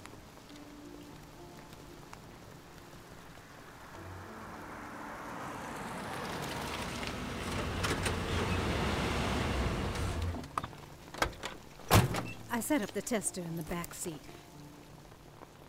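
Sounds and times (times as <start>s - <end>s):
truck engine rumbling as the vehicle rolls up: 4.3s - 11.4s
truck door opening with sharp clicks and clunks: 7.4s - 8.8s, 9.6s - 12.5s
speech: 12.6s - 14.4s.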